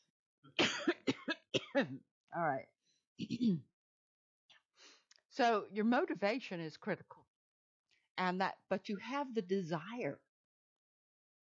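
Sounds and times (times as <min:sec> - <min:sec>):
person coughing: 0:00.6 - 0:02.0, 0:03.2 - 0:03.6
speech: 0:01.8 - 0:03.7, 0:05.4 - 0:07.2, 0:08.2 - 0:10.2.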